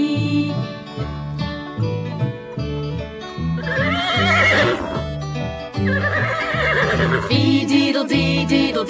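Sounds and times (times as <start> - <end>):
bouncy rhythmic music with a steady bass pattern: 0.0 - 8.8
horse whinnying: 3.6 - 5.2, 5.8 - 7.3.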